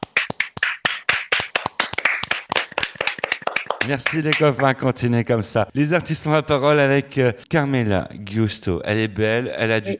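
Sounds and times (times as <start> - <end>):
small group clapping: 0.0 - 4.8
speech: 3.8 - 9.9.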